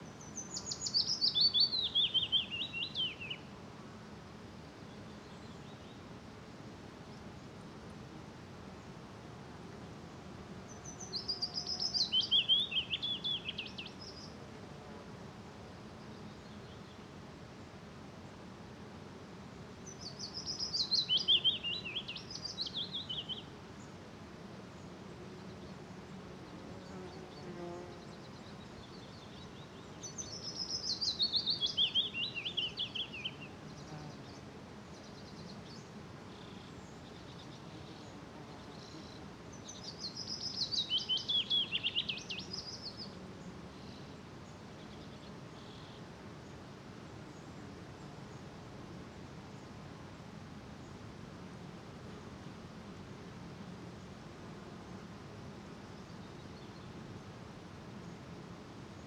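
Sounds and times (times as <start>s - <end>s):
many insects humming in a forest in Norway: 0.0s - 59.0s
willow warbler singing in a small birch forest in Norway: 0.1s - 3.4s, 10.8s - 14.3s, 19.8s - 23.5s, 26.8s - 34.4s, 35.0s - 45.9s.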